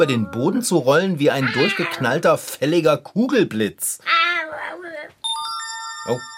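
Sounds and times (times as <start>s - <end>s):
high wavering vocal sound: 0.0s - 2.2s
speech: 0.0s - 4.8s, 6.0s - 6.3s
mobile phone ringtone from a back trouser pocket: 5.2s - 6.3s.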